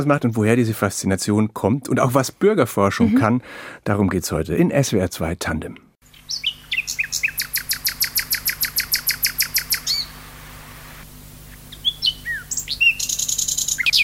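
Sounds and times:
speech: 0.0 - 6.5
male common nightingale Luscinia megarhynchos singing loud trills: 6.1 - 10.2, 11.7 - 14.0.

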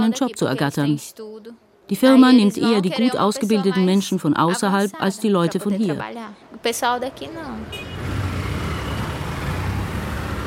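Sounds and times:
speech: 0.1 - 8.0
busy street traffic with motorcycles in Altamira Brazil: 6.4 - 10.4.

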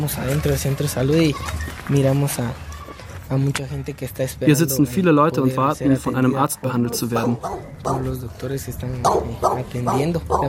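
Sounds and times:
speech: 0.0 - 2.7, 3.3 - 10.4
dog barking with yappy bursts and whiny yips: 7.2 - 8.1, 9.0 - 10.4.

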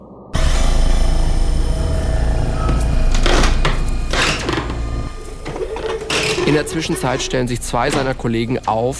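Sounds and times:
hydraulic door opener droning while forcing a door: 0.4 - 8.9
door creaking and cracking as it strains: 2.6 - 8.9
speech: 6.5 - 8.9.

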